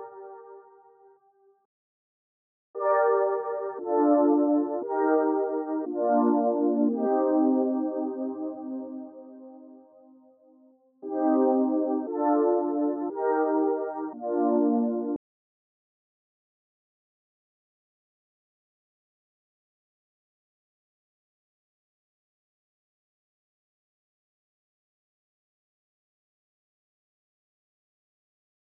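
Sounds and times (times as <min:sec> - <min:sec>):
116 BPM G minor synth: 0:02.8 - 0:09.2, 0:11.0 - 0:15.2.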